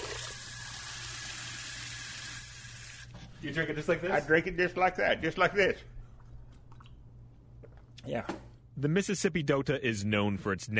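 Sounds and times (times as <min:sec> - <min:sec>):
water running from a tap: 0:00.0 - 0:03.1
speech: 0:03.4 - 0:06.0, 0:08.1 - 0:10.7.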